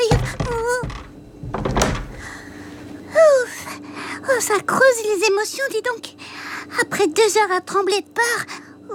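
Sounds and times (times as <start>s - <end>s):
door being pushed shut quickly: 0.0s - 2.3s
speech: 4.4s - 8.9s.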